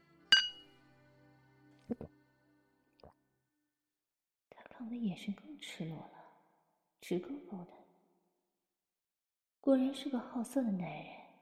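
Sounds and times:
glasses clinking in a toast: 0.3s - 0.6s
speech: 4.8s - 6.2s, 7.0s - 7.8s, 9.6s - 11.2s.

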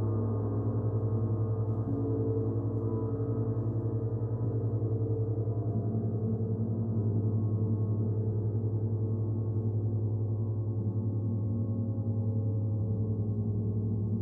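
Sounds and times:
gong sound bath hum: 0.0s - 14.2s.

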